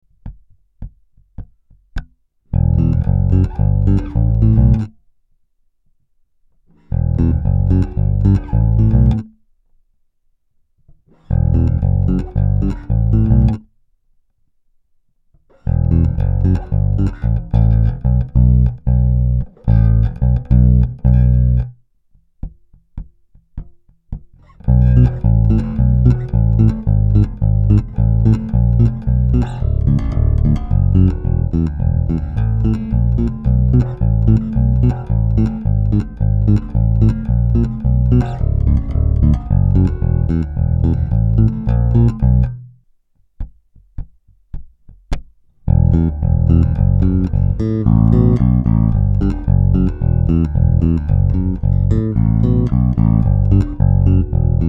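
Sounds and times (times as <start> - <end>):
bass samples: 2.5 - 5.0, 6.8 - 9.4, 11.2 - 13.7, 15.6 - 21.8, 24.4 - 42.9, 45.1 - 54.6.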